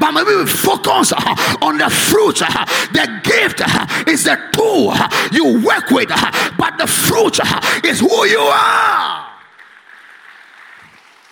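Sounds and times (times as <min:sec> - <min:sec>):
speech: 0:00.1 - 0:09.2
congregation clapping: 0:09.2 - 0:11.3.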